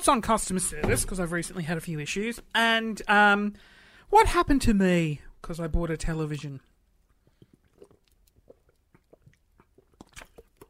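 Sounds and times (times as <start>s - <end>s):
speech: 0.0s - 6.7s
person sipping water from a glass: 7.0s - 10.6s
person swallowing: 7.0s - 10.6s.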